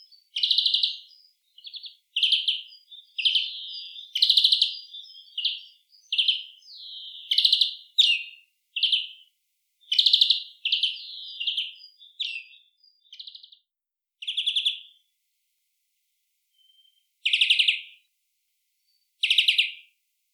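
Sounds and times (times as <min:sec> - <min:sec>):
European greenfinch Chloris chloris calling with twittering buzzy notes and trills: 0:00.0 - 0:09.2, 0:09.8 - 0:13.6, 0:16.6 - 0:18.0, 0:19.2 - 0:19.8.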